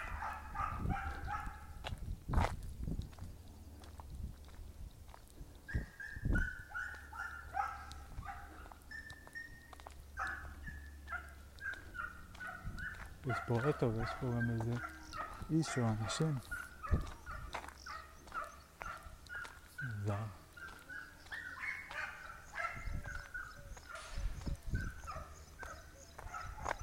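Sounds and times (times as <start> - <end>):
dogs barking outdoors at a distance: 0.0 - 2.5, 3.6 - 26.8
speech: 13.3 - 17.2.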